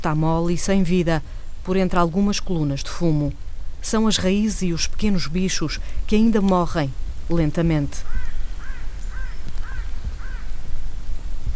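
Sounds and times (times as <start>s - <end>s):
speech: 0.0s - 8.2s
low rumble of outdoor noise: 0.0s - 11.5s
crow cawing in a wildfire-burned landscape: 8.0s - 10.6s.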